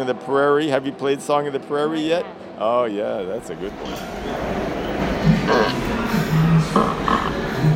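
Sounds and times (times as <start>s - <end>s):
speech: 0.0s - 4.5s
fart noises played from a machine: 5.3s - 7.6s.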